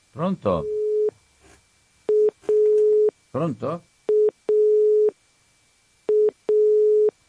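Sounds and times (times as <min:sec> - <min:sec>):
speech: 0:00.2 - 0:00.8, 0:03.4 - 0:03.9
telephone line busy tone: 0:00.6 - 0:01.1, 0:02.1 - 0:03.1, 0:04.1 - 0:05.1, 0:06.1 - 0:07.1.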